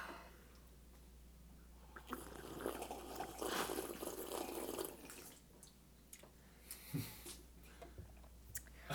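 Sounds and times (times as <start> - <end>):
people slurping and sipping hot coffee: 2.0 - 5.4.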